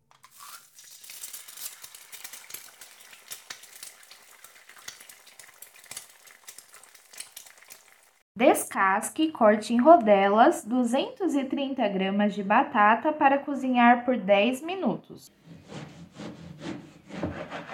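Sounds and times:
desalted sliced cod searing in a very hot frying pan: 0.2 - 8.2
speech: 8.4 - 15.4.

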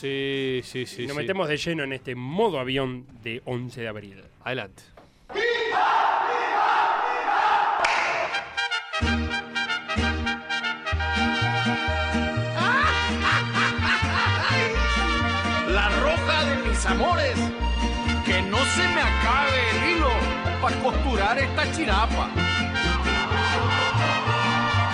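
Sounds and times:
speech: 0.0 - 5.0, 20.6 - 22.7
people shouting: 5.3 - 8.4, 12.6 - 15.4, 22.6 - 24.9
full band playing a football club anthem in Bolivian corrido style with a bouncy bass line: 8.7 - 24.9
people laughing: 12.6 - 16.2, 22.8 - 24.9.

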